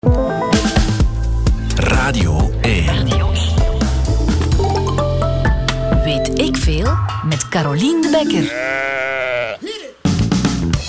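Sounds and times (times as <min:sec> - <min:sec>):
music: 0:00.0 - 0:08.5, 0:10.0 - 0:10.8
speech: 0:07.3 - 0:09.3
sheep bleating: 0:08.3 - 0:10.0.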